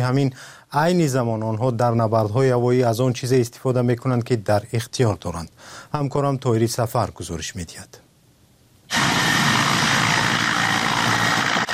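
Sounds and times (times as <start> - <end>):
speech: 0.0 - 8.0
military helicopter engine and rotor noise: 8.9 - 11.7.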